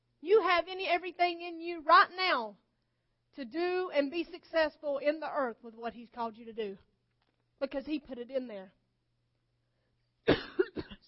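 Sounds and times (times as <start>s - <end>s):
speech: 0.2s - 2.6s, 3.4s - 6.9s, 7.6s - 8.8s
quick harsh coughing: 10.3s - 11.0s.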